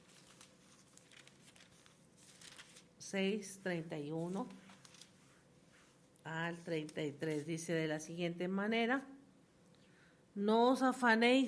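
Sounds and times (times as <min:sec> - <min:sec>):
thin paper pages of a Bible flipping: 0:00.0 - 0:02.9, 0:04.2 - 0:05.4
speech: 0:03.1 - 0:04.6, 0:06.3 - 0:09.2, 0:10.4 - 0:11.4.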